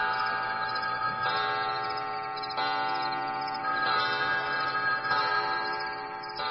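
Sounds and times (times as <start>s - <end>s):
wall clock striking midnight: 0.0s - 6.4s.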